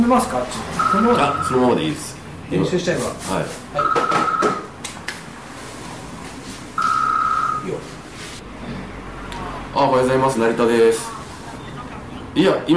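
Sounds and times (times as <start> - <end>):
speech: 0.1 - 4.6, 9.8 - 11.1, 12.4 - 12.7
mobile phone ringing with steady electronic tone: 0.8 - 1.8, 3.8 - 4.7, 6.8 - 7.8.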